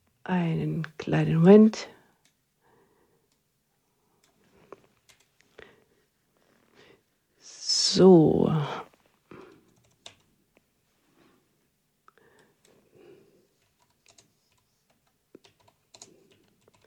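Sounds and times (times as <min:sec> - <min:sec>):
speech: 0:00.2 - 0:02.0, 0:07.9 - 0:08.8
typing on a computer keyboard: 0:05.0 - 0:05.4, 0:09.5 - 0:10.3, 0:13.6 - 0:16.8.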